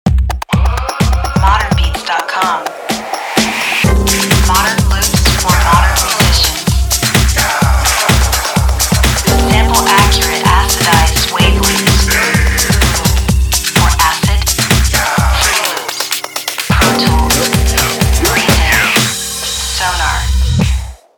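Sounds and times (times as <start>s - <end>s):
RnB club drum loops: 0.0s - 21.0s.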